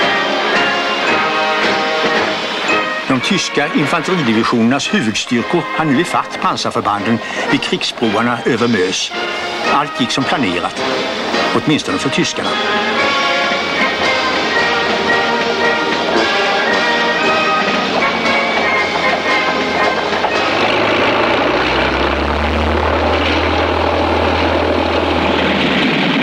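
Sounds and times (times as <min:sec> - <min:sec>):
British and French bomber aircraft engines droning over pontoon bridges in wartime: 0:00.0 - 0:26.2
speech: 0:03.2 - 0:12.9
deep low rumble of passing planes: 0:19.9 - 0:26.2.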